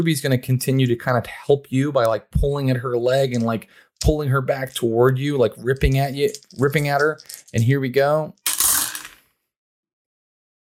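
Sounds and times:
speech: 0:00.0 - 0:08.4
dice rolled during a tabletop role-playing game: 0:03.3 - 0:05.0, 0:05.6 - 0:07.8, 0:08.4 - 0:09.2.

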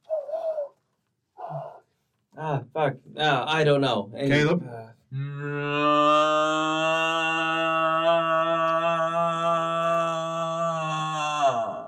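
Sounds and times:
person imitating a loon call: 0:00.0 - 0:00.8, 0:01.4 - 0:01.8, 0:05.1 - 0:11.8
speech: 0:02.4 - 0:05.2.

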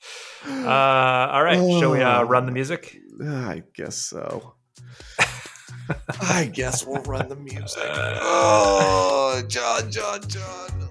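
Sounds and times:
speech: 0:00.4 - 0:05.3, 0:05.9 - 0:10.8
laughter: 0:05.2 - 0:09.4
person yawning: 0:07.7 - 0:09.4.

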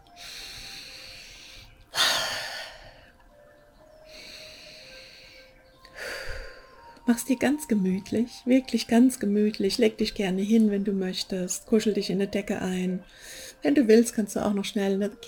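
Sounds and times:
slow deep breathing close to the microphone: 0:00.0 - 0:03.3, 0:04.0 - 0:07.0, 0:13.0 - 0:13.6
speech: 0:07.1 - 0:15.2.

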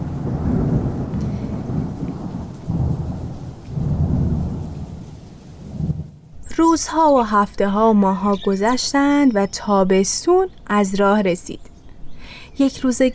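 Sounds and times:
steady rain pouring: 0:00.0 - 0:06.4
deep rolls of thunder rumbling: 0:00.0 - 0:08.0
speech: 0:06.6 - 0:11.7, 0:12.6 - 0:13.1.

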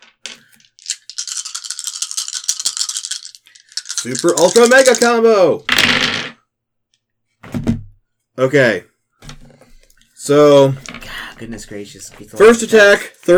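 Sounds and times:
handful of dice clattering onto a surface for attack rolls: 0:00.0 - 0:06.4
handful of dice shaken: 0:00.0 - 0:06.4, 0:10.7 - 0:11.2, 0:12.4 - 0:13.3
speech: 0:04.0 - 0:06.3, 0:08.4 - 0:08.9, 0:10.3 - 0:13.3.

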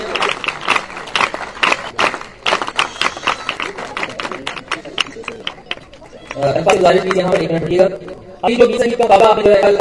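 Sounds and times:
audience applause: 0:00.0 - 0:07.4
crowd voices: 0:00.0 - 0:09.7
speech: 0:06.4 - 0:09.7.

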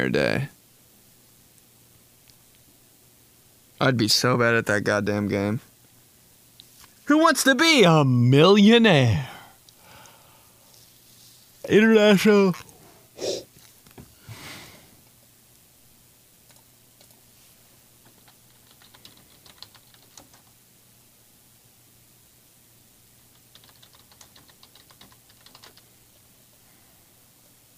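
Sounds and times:
speech: 0:00.0 - 0:00.6, 0:03.8 - 0:05.7, 0:07.1 - 0:09.4, 0:11.6 - 0:13.4
faint steady hum: 0:00.0 - 0:27.7
breathy noises: 0:09.1 - 0:10.8, 0:12.6 - 0:13.6
typing on a computer keyboard: 0:16.4 - 0:17.2, 0:18.0 - 0:20.5, 0:23.3 - 0:25.9.

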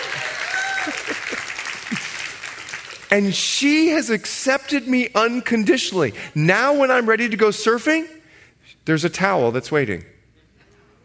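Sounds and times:
audience applause for a speaker's wife during a talk: 0:00.0 - 0:03.4
speech: 0:03.1 - 0:08.2, 0:08.8 - 0:10.2.

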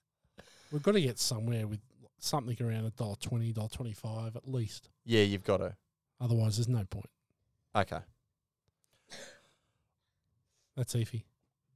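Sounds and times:
speech: 0:00.7 - 0:08.1, 0:10.8 - 0:11.3
harsh cough: 0:09.1 - 0:09.5.

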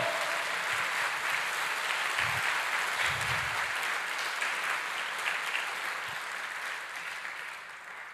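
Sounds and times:
stray voices: 0:00.0 - 0:01.0
audience applauding: 0:00.0 - 0:08.1.

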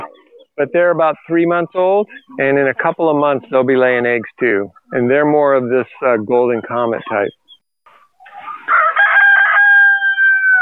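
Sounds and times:
speech: 0:00.1 - 0:07.4
rooster crowing on a farm: 0:08.3 - 0:10.5.

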